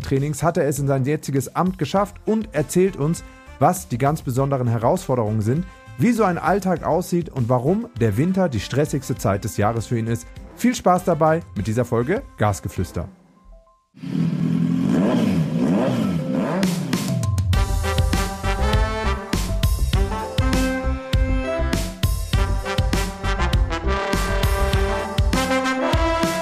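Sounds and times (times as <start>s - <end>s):
driving music with drums: 0.0s - 12.8s, 16.5s - 26.4s
speech: 0.0s - 13.2s, 14.0s - 14.2s
motorcycle engine revving: 14.0s - 21.3s, 22.4s - 26.2s.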